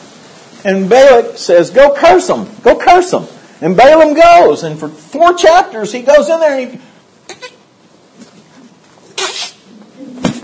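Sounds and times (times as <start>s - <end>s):
quiet noise: 0.0s - 10.4s
speech: 0.6s - 7.4s
person sneezing: 9.1s - 10.3s.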